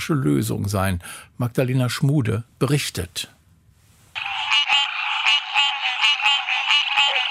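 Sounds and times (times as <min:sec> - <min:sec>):
speech: 0:00.0 - 0:03.4
chorus of American green tree frogs calling: 0:04.2 - 0:07.2.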